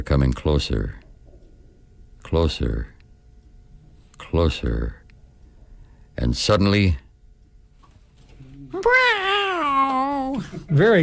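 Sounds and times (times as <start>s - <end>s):
speech: 0.0s - 1.0s, 2.3s - 2.9s, 4.2s - 5.0s, 6.2s - 7.0s, 8.8s - 9.4s, 10.4s - 11.0s
brief low hum: 0.0s - 10.8s
person imitating an alley cat meowing: 8.8s - 10.4s.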